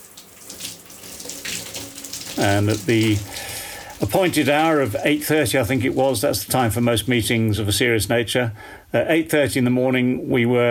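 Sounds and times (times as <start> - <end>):
running shower water: 0.0 - 7.1
speech: 2.4 - 10.6.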